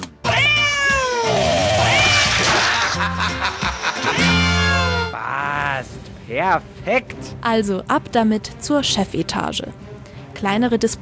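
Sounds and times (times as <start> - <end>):
cat meowing sound effects: 0.2 - 2.3
laughter: 2.1 - 5.1
speech: 6.3 - 11.0.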